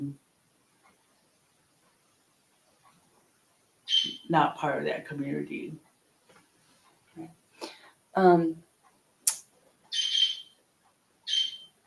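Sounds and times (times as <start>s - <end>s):
bird singing outside: 3.9s - 4.3s, 9.9s - 10.6s, 11.3s - 11.8s
speech: 4.3s - 5.9s, 7.2s - 8.7s.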